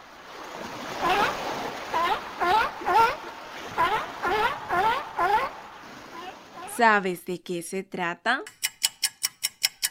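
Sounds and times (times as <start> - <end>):
surf: 0.0 - 6.9
wind: 0.0 - 9.8
seal calling by the sea: 0.9 - 6.8
speech: 6.8 - 8.6.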